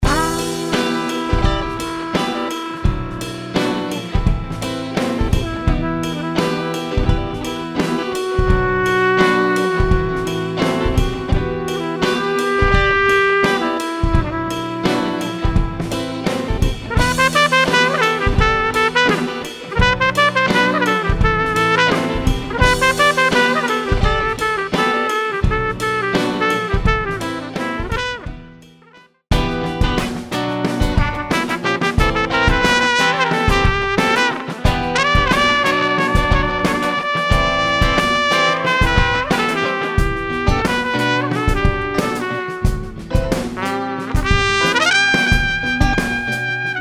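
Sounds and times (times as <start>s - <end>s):
smooth trumpet grooves: 0.0s - 46.8s.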